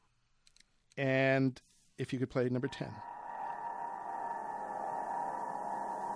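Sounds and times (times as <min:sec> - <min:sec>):
speech: 0:01.0 - 0:03.1
open piano strings reverberating from screams: 0:02.7 - 0:06.1.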